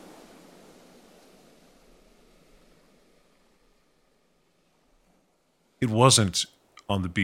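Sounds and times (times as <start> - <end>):
ocean surf breaking against shoreline rocks: 0.0 - 5.2
speech: 5.8 - 7.2.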